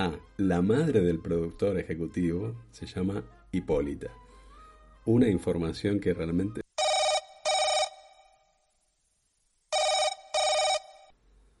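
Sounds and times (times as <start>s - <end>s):
speech: 0.0s - 4.2s, 5.0s - 6.6s
telephone ringing with electronic trills: 6.8s - 8.4s, 9.7s - 11.2s.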